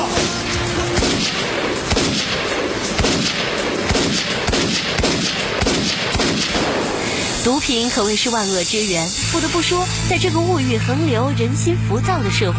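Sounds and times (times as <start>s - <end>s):
gunshots from a crime film: 0.0s - 8.1s
speech: 7.5s - 12.5s.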